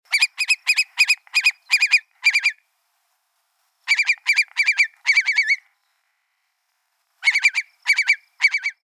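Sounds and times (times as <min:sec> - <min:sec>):
long-billed curlew calling: 0:00.1 - 0:02.6, 0:03.8 - 0:06.3, 0:07.2 - 0:08.8.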